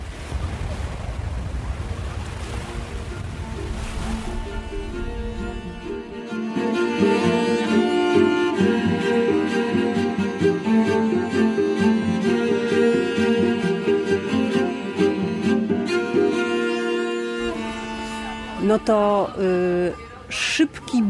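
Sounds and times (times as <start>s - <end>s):
wind blowing off the sea: 0.0s - 6.3s
sea waves rushing: 0.0s - 19.8s
speech: 18.8s - 20.0s.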